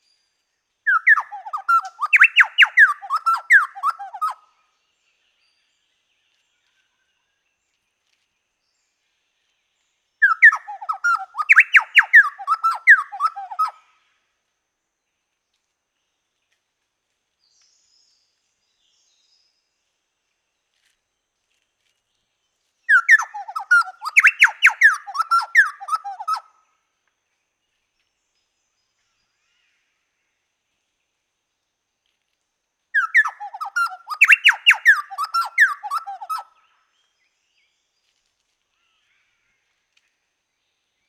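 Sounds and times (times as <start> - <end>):
Orthonyx spaldingii chowchilla call: 0.9 - 4.4, 10.2 - 13.8, 22.9 - 26.5, 33.0 - 36.6.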